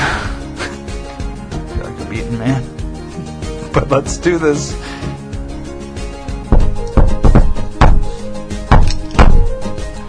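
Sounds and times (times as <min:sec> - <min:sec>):
speech: 0:02.2 - 0:02.8, 0:03.7 - 0:05.0
firm knocking on a door: 0:06.5 - 0:08.1, 0:08.7 - 0:09.5.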